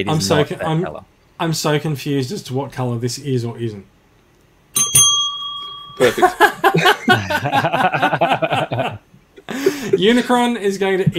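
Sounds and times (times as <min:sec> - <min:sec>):
speech: 0:00.0 - 0:04.0, 0:04.8 - 0:05.0, 0:06.0 - 0:09.0, 0:09.6 - 0:11.1
small bell dinging as a cue: 0:04.8 - 0:06.5
rhythmic laughter: 0:06.0 - 0:10.4.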